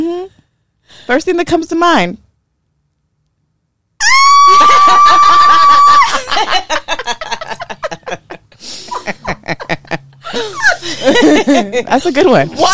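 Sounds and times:
speech: 0.0 - 2.2, 10.9 - 12.7
person screaming high-pitched: 4.0 - 6.2
laughter and chuckling: 4.6 - 11.7.

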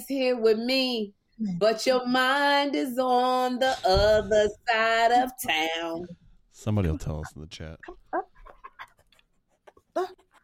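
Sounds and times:
speech: 0.0 - 8.3, 10.0 - 10.2
dog high-pitched whimpering: 7.9 - 9.0.

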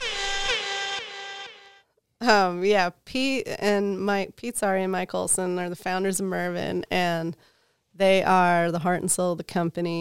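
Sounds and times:
loud sustained air horn blast: 0.0 - 1.9
speech: 2.2 - 9.9.

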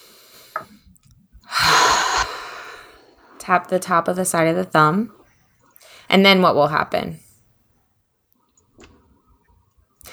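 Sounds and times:
deep breath: 1.5 - 3.4, 5.8 - 6.1
speech: 3.4 - 5.2, 6.1 - 7.2.

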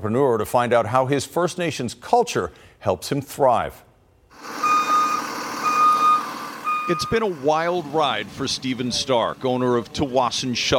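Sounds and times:
speech: 0.0 - 4.6, 6.9 - 10.7
school bus engine rumbling: 4.3 - 10.7
school bus backup alarm beeping while reversing: 4.4 - 7.4.

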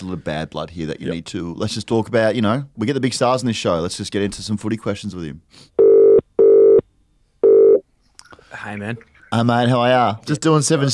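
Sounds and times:
speech: 0.0 - 5.8, 8.6 - 10.9
electronic telephone dialing tones: 5.8 - 6.8, 7.4 - 7.8.

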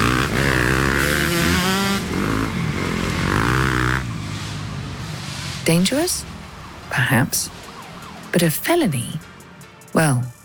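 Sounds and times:
dirt bike engines revving in city streets: 0.0 - 7.6
city traffic in Manhattan streets: 0.0 - 10.4
speech: 5.7 - 6.3, 6.9 - 7.6, 8.4 - 9.3, 9.9 - 10.4.

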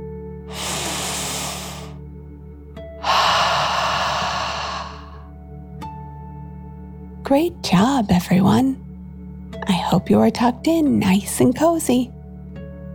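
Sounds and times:
slow deep dragon breath in and out during a children's meditation: 0.5 - 2.0, 3.0 - 5.3
speech: 7.3 - 8.8, 9.9 - 12.2.

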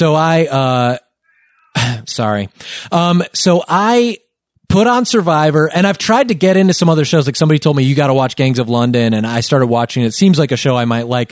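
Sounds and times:
speech: 0.0 - 1.0, 1.8 - 11.3
cat meowing loudly: 1.3 - 1.8.

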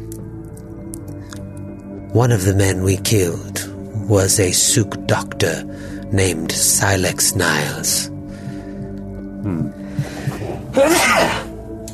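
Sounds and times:
speech: 2.1 - 8.2, 9.4 - 9.8, 10.8 - 11.4
person sneezing: 10.7 - 11.5.

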